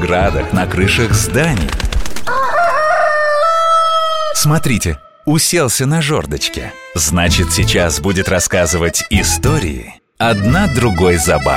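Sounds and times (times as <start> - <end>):
speech: 0.0 - 2.5, 4.4 - 11.5
rooster crowing: 2.2 - 4.6.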